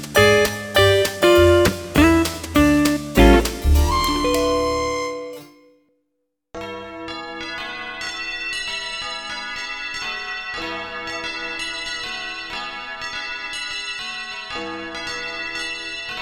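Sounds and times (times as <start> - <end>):
bells pealing in a rapid cascade: 0.2 - 5.5
short ringing tone: 0.2 - 5.6.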